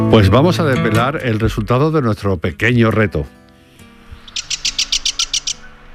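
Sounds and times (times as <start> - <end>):
speech: 0.2 - 3.4
Sardinian warbler rattling call: 3.6 - 5.9.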